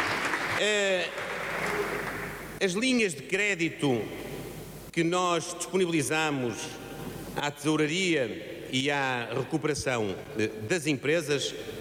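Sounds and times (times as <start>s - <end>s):
applause from a party's benches in a parliamentary chamber: 0.0s - 2.6s
speech: 0.6s - 4.2s, 5.0s - 6.8s, 7.4s - 11.7s.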